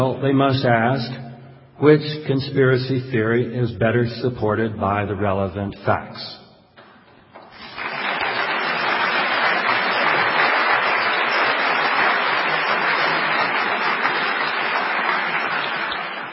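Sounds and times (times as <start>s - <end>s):
speech: 0.0s - 6.4s
sizable crowd applauding: 7.4s - 16.3s.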